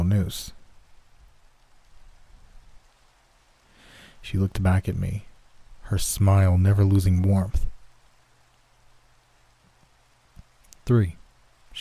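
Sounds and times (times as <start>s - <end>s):
rain falling: 0.0s - 11.7s
speech: 0.1s - 0.6s, 4.2s - 5.3s, 5.9s - 7.7s, 10.9s - 11.2s.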